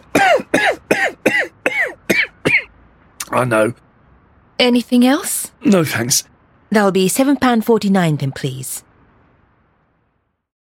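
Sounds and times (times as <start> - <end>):
harsh coughs: 0.0 - 2.7
speech: 3.4 - 3.9, 4.6 - 8.9.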